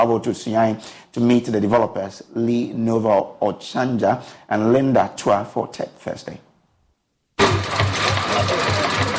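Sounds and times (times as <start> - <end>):
speech: 0.0 - 6.5
pedal-powered bicycle water filter machine whirring with rhythmic thump: 7.4 - 9.1.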